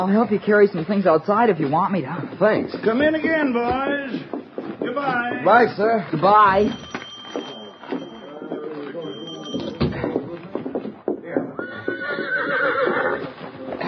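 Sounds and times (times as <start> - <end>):
speech: 0.0 - 7.5
horse hooves clopping in uneven steps: 0.0 - 13.8
horse whinnying with a rising wavering cry: 11.6 - 13.8.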